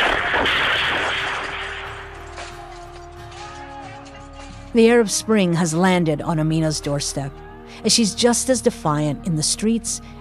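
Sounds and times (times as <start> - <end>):
continuous gunfire: 0.0 - 2.8
speech: 4.7 - 10.1.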